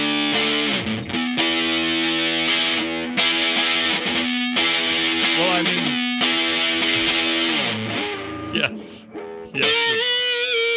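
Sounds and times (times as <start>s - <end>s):
semi-hollow electric guitar through a fuzz pedal playing distorted chords: 0.0s - 10.7s.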